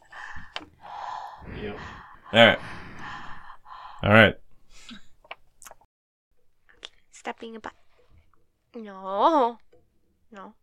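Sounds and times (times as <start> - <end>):
breathing right against a microphone: 0.0 - 5.0
speech: 1.7 - 2.8, 4.0 - 4.4, 7.4 - 7.8, 8.7 - 9.6, 10.3 - 10.6.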